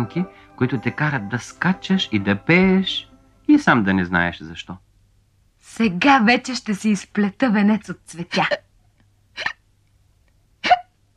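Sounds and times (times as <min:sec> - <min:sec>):
speech: 0:00.0 - 0:04.9, 0:05.6 - 0:08.7
person voicing a tortoise hiccuping: 0:09.4 - 0:09.6, 0:10.6 - 0:11.0.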